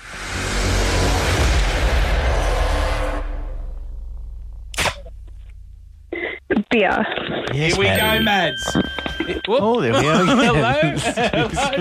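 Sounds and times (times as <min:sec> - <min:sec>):
car passing: 0:00.0 - 0:06.2
laughter: 0:06.2 - 0:11.8
speech: 0:06.7 - 0:11.8.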